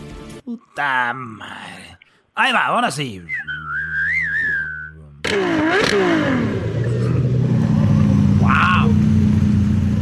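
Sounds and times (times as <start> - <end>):
speech: 0.5 - 3.5, 5.3 - 6.7
wavering whistle-like tone: 3.3 - 5.1
Ferrari sports car engine revving: 5.2 - 10.0.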